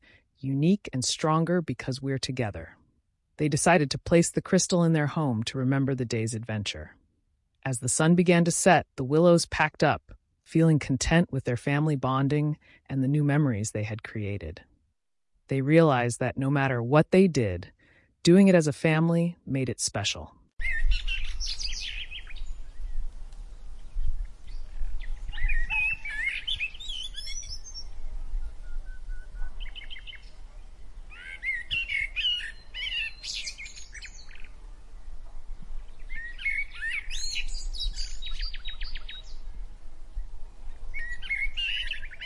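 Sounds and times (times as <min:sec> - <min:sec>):
speech: 0:00.4 - 0:02.8, 0:03.4 - 0:07.0, 0:07.6 - 0:14.7, 0:15.5 - 0:21.6
cheerful forest birds chirping and trilling: 0:20.6 - 0:39.6, 0:40.7 - 0:42.2.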